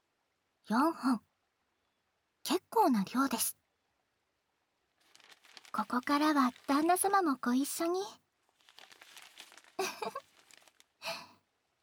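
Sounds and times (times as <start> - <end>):
speech: 0.7 - 1.3, 2.5 - 3.6, 5.7 - 8.2, 10.0 - 10.2
newspaper crinkling and rustling while wrapping washed sweet potatoes: 5.0 - 11.2
newspaper crumpling bursts: 5.0 - 11.3.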